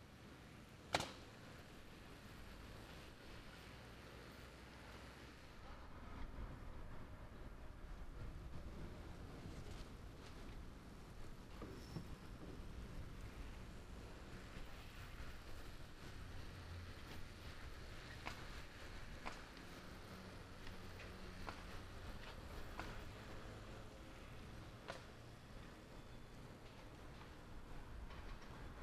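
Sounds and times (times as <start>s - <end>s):
low rumble of wind at a construction site: 0.0s - 28.8s
sharp loud nail gun crack: 0.9s - 1.2s.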